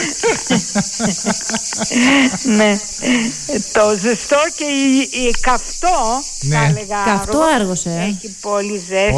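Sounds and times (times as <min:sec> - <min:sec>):
laughter: 0:00.0 - 0:03.9
cicadas buzzing on a very hot day in Argos Greece: 0:00.0 - 0:09.1
speech: 0:00.4 - 0:09.1.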